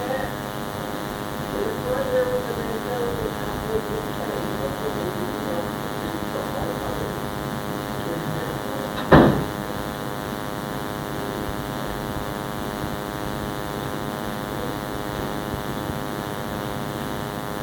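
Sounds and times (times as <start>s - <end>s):
steady hum: 0.0s - 17.6s
door shutting with a brief rattle: 8.9s - 9.6s.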